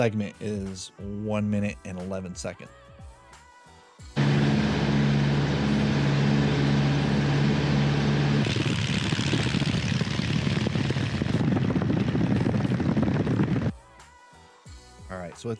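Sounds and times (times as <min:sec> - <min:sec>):
speech: 0:00.0 - 0:02.8
small propeller plane engine roaring for takeoff: 0:04.2 - 0:13.7.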